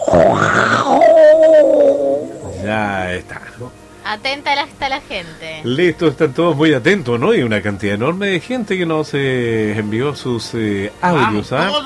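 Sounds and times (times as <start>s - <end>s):
dinosaur roar sound effect: 0.0s - 3.0s
speech: 0.1s - 0.6s, 3.2s - 11.8s.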